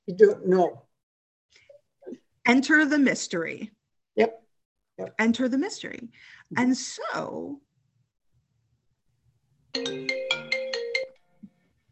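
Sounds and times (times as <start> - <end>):
speech: 0.1 - 0.8, 2.4 - 4.4, 5.0 - 7.7, 9.8 - 10.3
phone ringtone with bright melodic electronic notes: 9.8 - 11.4.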